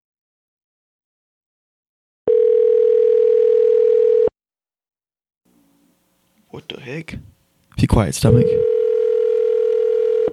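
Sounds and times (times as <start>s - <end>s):
electronic ringing tone of an outgoing phone call: 2.3s - 4.3s, 8.3s - 10.3s
speech: 6.6s - 8.7s.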